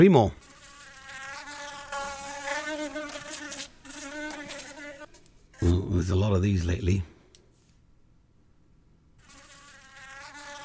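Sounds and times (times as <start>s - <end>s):
speech: 0.0s - 0.4s, 5.6s - 7.1s
fly buzzing: 0.4s - 5.6s, 9.2s - 10.6s.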